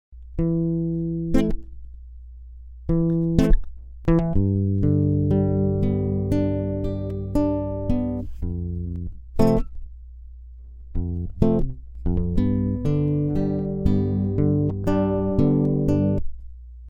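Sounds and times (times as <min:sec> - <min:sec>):
lead guitar playing accompaniment: 0:00.4 - 0:01.7, 0:02.9 - 0:09.7, 0:11.0 - 0:16.2.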